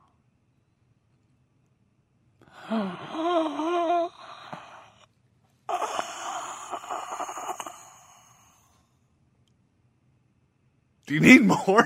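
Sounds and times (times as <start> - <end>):
person performing exaggerated heavy breathing: 2.4 - 5.1, 5.7 - 8.9
speech: 2.7 - 3.8, 11.1 - 11.8.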